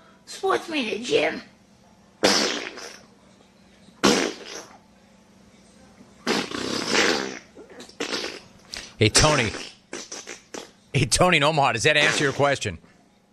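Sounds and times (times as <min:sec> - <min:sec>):
speech: 0:00.4 - 0:01.5, 0:09.0 - 0:09.7, 0:11.0 - 0:12.9
raspy fart noises: 0:02.2 - 0:03.1, 0:04.0 - 0:04.8, 0:06.2 - 0:10.8, 0:12.0 - 0:12.6.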